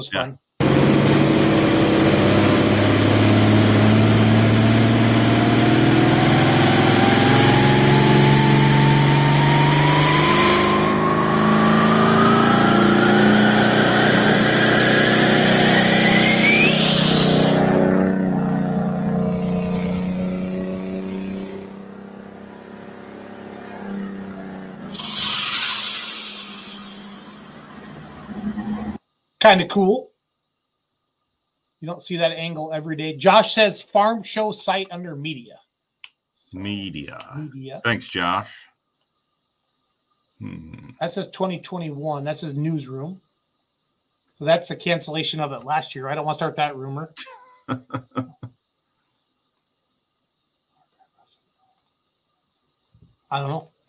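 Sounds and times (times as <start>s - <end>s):
speech: 0.0s - 1.5s, 29.5s - 30.1s, 31.8s - 35.6s, 36.5s - 38.7s, 40.4s - 43.2s, 44.4s - 48.5s, 53.3s - 53.7s
tractor engine revving on a dynamometer: 0.6s - 29.0s
laughter: 47.2s - 48.5s.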